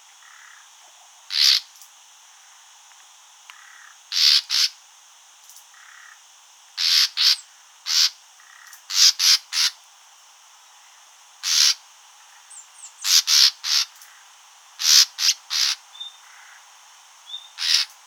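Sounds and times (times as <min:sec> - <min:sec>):
common nightingale Luscinia megarhynchos calling with rough rasping notes: 0:01.3 - 0:01.7, 0:03.6 - 0:04.8, 0:06.8 - 0:08.2, 0:08.9 - 0:09.8, 0:11.4 - 0:11.8, 0:12.5 - 0:14.1, 0:14.8 - 0:16.6, 0:17.2 - 0:18.0.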